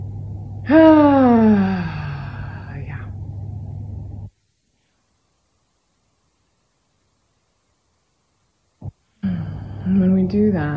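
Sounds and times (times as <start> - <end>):
deep breath let out as a loud voiced sigh: 0.6 - 3.1, 9.2 - 9.9
speech: 0.7 - 1.6, 10.3 - 10.7.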